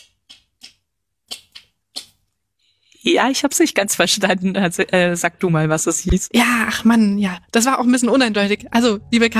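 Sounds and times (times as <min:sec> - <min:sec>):
person imitating sperm whale clicks with their mouth: 0:00.0 - 0:02.3
speech: 0:03.0 - 0:09.3.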